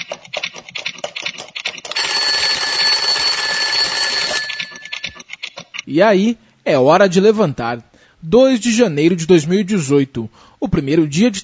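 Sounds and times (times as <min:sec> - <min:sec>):
mechanical alarm clock ringing: 0:01.9 - 0:05.2
speech: 0:05.9 - 0:11.4.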